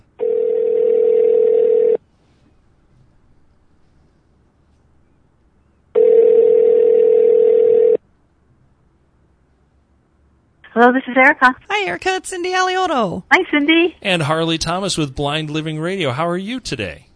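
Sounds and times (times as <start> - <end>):
phone line ringing on the caller's end: 0.2 - 2.0, 6.0 - 8.0
speech: 10.8 - 17.1.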